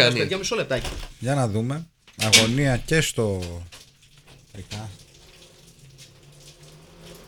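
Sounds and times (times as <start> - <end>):
speech: 0.0 - 3.8, 4.6 - 5.0
water dripping and spattering from an air conditioner: 0.0 - 7.2
water splashes: 2.2 - 7.2.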